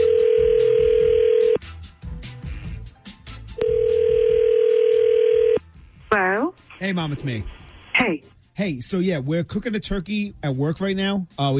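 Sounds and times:
telephone line ringing tones through the earpiece: 0:00.0 - 0:01.6, 0:03.6 - 0:05.6
speech: 0:06.8 - 0:11.5.

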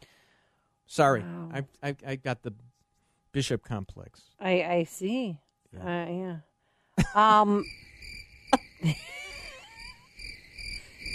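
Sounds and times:
speech: 0:00.9 - 0:02.7, 0:03.3 - 0:07.9, 0:08.8 - 0:09.2
chorus of crickets chirping: 0:07.0 - 0:11.1.

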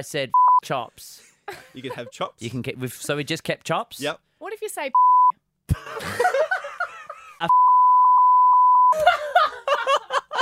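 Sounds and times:
speech: 0:00.0 - 0:06.6, 0:07.4 - 0:07.7, 0:08.9 - 0:09.3
single-pitch censor bleep: 0:05.0 - 0:05.3, 0:07.5 - 0:08.9
people laughing: 0:05.7 - 0:07.5, 0:08.9 - 0:10.4.

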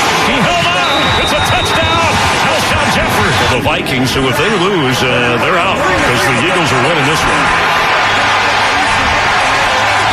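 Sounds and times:
huge stadium crowd cheering wildly: 0:00.0 - 0:10.1
speech: 0:03.7 - 0:07.8.

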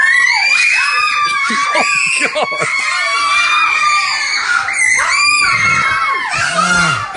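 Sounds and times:
crowd of people screaming at night: 0:00.0 - 0:07.1
people laughing: 0:01.0 - 0:03.6.

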